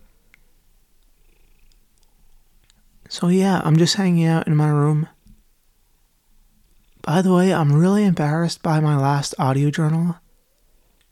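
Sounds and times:
cat purring while curled on a person's lap: 0:01.0 - 0:02.6, 0:06.6 - 0:07.6
speech: 0:03.1 - 0:05.2, 0:07.1 - 0:10.2.

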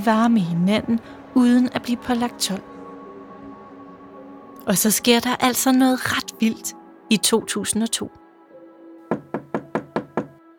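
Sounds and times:
speech: 0:00.0 - 0:02.7, 0:04.7 - 0:08.2
knocking on a door: 0:09.1 - 0:10.4.

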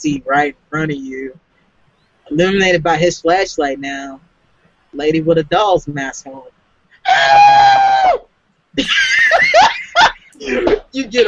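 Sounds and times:
speech: 0:00.0 - 0:01.4, 0:02.3 - 0:04.3, 0:04.9 - 0:06.5, 0:07.1 - 0:08.2, 0:08.8 - 0:09.0, 0:10.4 - 0:11.2
shrill wavering shrieks and giggly cries: 0:07.0 - 0:08.2
loud sustained high-pitched scream: 0:07.0 - 0:08.3.

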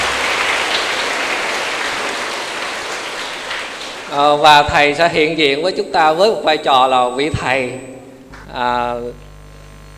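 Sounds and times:
large crowd of young people applauding at an afternoon gathering: 0:00.0 - 0:04.3
speech: 0:04.1 - 0:07.9, 0:08.5 - 0:09.2.

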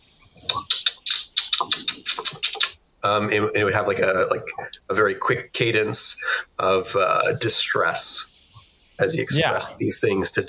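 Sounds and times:
voice imitating chittering insect mandibles with mouth clicks: 0:00.0 - 0:02.8, 0:04.4 - 0:04.8, 0:08.2 - 0:10.0
speech: 0:03.0 - 0:08.3, 0:09.0 - 0:10.4.

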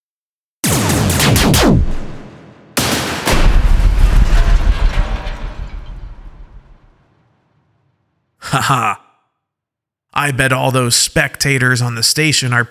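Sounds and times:
spaceship guns firing: 0:00.6 - 0:06.9
fighters exploding into shrapnel: 0:00.6 - 0:07.3
speech: 0:08.6 - 0:09.0, 0:10.2 - 0:12.6.

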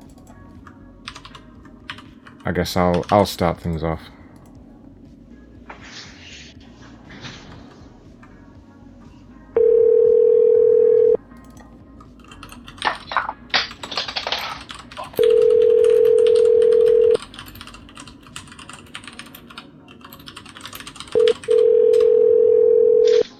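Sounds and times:
speech: 0:02.5 - 0:04.2
phone line ringback tone: 0:09.6 - 0:11.2, 0:15.2 - 0:17.2, 0:21.2 - 0:23.2.

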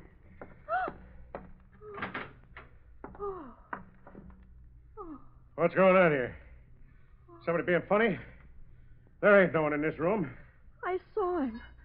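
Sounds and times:
room door hinges creaking: 0:00.0 - 0:04.7
speech: 0:05.6 - 0:06.4, 0:07.4 - 0:08.3, 0:09.2 - 0:11.7.

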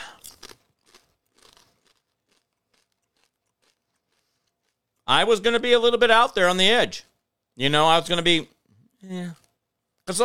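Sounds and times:
crunchy food being chewed: 0:00.0 - 0:05.1
speech: 0:05.1 - 0:09.4, 0:10.1 - 0:10.2.

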